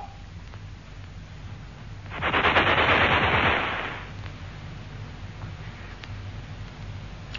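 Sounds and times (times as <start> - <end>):
gunshots in a military setting: 2.1 - 4.1.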